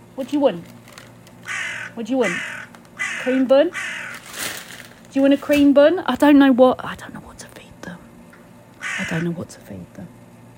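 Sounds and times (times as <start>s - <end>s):
speech: 0.2s - 0.8s, 2.0s - 2.5s, 3.2s - 3.9s, 5.2s - 7.2s, 9.0s - 10.2s
pet crow cawing: 1.4s - 4.4s, 8.8s - 9.5s.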